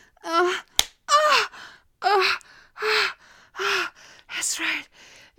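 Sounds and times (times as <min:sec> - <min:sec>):
woman gasping and moaning breathily: 0:00.0 - 0:04.6
hand slapping skin: 0:00.7 - 0:01.1.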